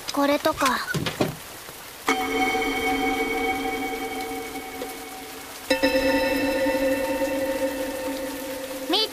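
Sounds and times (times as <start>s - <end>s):
steady hiss of rain: 0.0s - 9.1s
speech: 0.2s - 1.2s
leaking rainwater drips with metallic ping: 2.0s - 9.1s.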